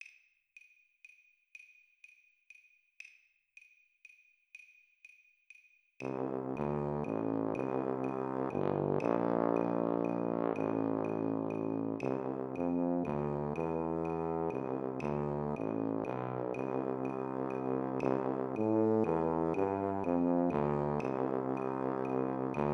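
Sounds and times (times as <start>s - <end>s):
tuba playing: 6.0s - 22.7s.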